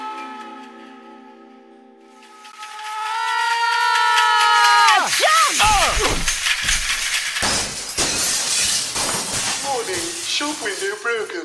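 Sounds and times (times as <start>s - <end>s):
voices crying out: 2.6s - 6.4s
tinkling, scattering glass shards: 4.8s - 11.4s
glass shattering: 4.9s - 11.4s.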